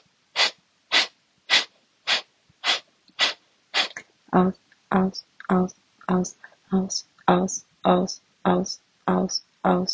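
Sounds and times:
sharp forceful breaths through the nose or mouth: 0.4 - 4.0
speech: 4.3 - 9.9.

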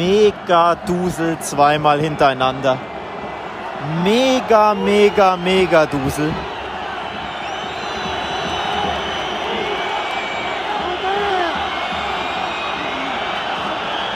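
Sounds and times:
speech: 0.0 - 2.9, 3.8 - 6.5
huge stadium crowd roaring at Camp Nou: 0.0 - 14.1
shrill whistles of a stadium crowd in protest: 3.4 - 14.1.

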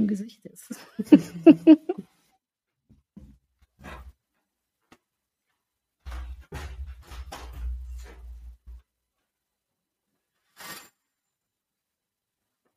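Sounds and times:
speech: 0.1 - 1.8
laughter: 1.0 - 2.0
curtains being drawn shut: 10.6 - 11.0.

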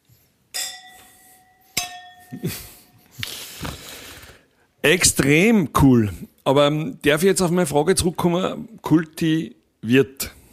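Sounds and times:
wine glasses clinking in a toast: 0.5 - 3.0
speech: 2.3 - 2.7, 4.8 - 10.4
breathy sounds: 2.4 - 4.7.

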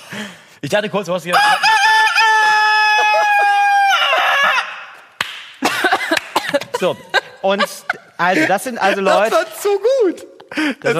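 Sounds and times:
speech: 0.1 - 1.9, 6.8 - 10.9
person imitating a rooster crowing: 1.4 - 4.6
laughter: 5.6 - 10.9.

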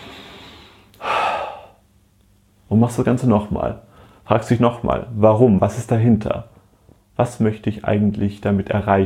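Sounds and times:
deep breath inhalation: 0.0 - 1.8, 3.9 - 4.2
speech: 2.7 - 6.5, 7.2 - 9.0.

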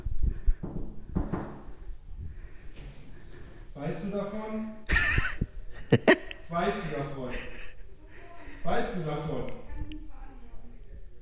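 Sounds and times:
dull knocks on a door: 0.5 - 1.8
speech: 3.8 - 4.8, 5.9 - 7.5, 8.7 - 9.6
laughter: 4.9 - 7.9.

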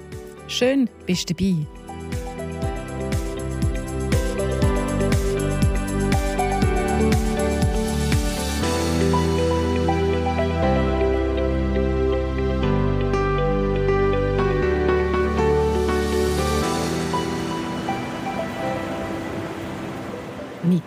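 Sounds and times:
music with deep stepped bass notes: 0.0 - 20.3
speech: 0.5 - 1.8
sea waves rushing on a beach: 16.4 - 20.8.

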